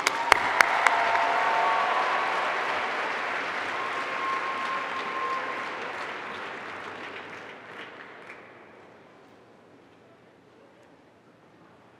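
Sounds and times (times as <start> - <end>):
large audience applause: 0.0 - 8.9.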